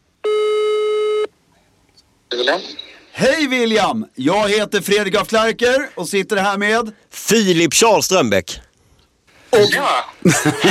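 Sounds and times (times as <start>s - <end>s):
telephone ringing tone over a call line: 0.2s - 1.3s
speech: 2.4s - 8.7s, 9.5s - 10.6s
laughter: 9.6s - 10.6s.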